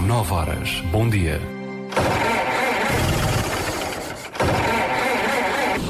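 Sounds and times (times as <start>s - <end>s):
speech: 0.2s - 1.6s
damaged car engine sputtering and cranking after wrong oil: 2.0s - 5.8s
strained whining squeals from damaged car engine: 2.1s - 5.8s.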